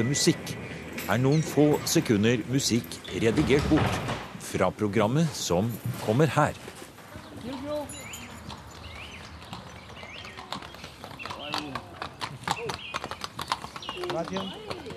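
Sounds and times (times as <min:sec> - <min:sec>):
speech: 0:00.0 - 0:06.8
birds chirping at a museum in Romania: 0:00.0 - 0:14.9
hooves of two draught horses pulling an open carriage clip-clopping: 0:00.0 - 0:14.9.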